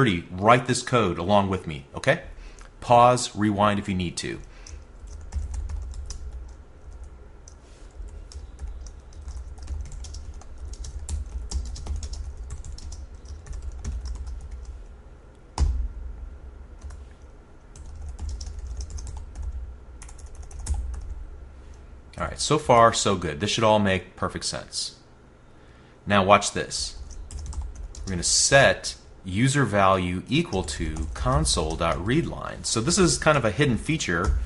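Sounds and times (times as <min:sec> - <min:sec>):
speech: 0:00.0 - 0:04.5, 0:22.4 - 0:25.0, 0:26.1 - 0:27.0, 0:28.0 - 0:34.4
typing C# code on a computer keyboard: 0:04.5 - 0:14.7, 0:17.7 - 0:21.1, 0:27.0 - 0:28.1.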